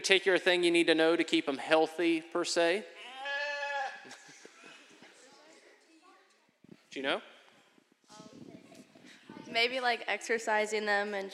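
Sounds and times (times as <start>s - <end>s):
speech: 0.0s - 3.0s, 6.9s - 7.3s, 9.5s - 11.3s
sheep bleating: 3.0s - 4.2s.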